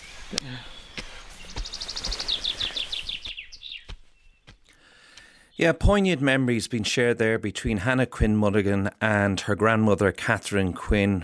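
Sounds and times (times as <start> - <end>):
bird singing bright high notes and a clear trill: 0.0 - 4.7
speech: 0.3 - 0.8, 5.6 - 11.2.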